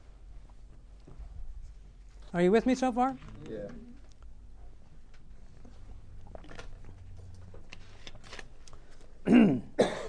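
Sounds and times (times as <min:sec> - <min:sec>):
speech: 0:02.3 - 0:03.8
person clearing throat: 0:09.2 - 0:10.0
person coughing: 0:09.2 - 0:10.0.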